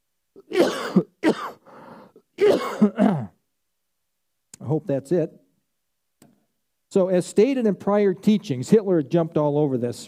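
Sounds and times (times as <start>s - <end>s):
speech: 0.4s - 1.1s, 2.8s - 3.1s, 4.8s - 5.4s, 6.9s - 10.0s
person clearing their throat: 0.4s - 1.6s, 2.4s - 3.4s
person coughing: 0.4s - 1.7s, 2.4s - 3.4s.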